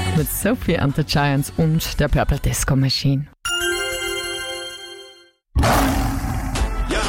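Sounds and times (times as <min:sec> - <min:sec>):
speech: 0:00.2 - 0:03.4
lion roaring: 0:05.6 - 0:06.9.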